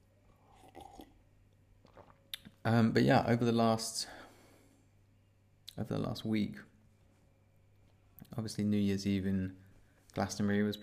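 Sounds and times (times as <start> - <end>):
soft wet slurp of someone sipping turmeric tea: 0.3 - 1.2, 1.8 - 2.6
person swallowing turmeric tea: 0.4 - 1.2, 1.8 - 2.6
speech: 2.6 - 4.2, 5.8 - 6.7, 8.4 - 10.8.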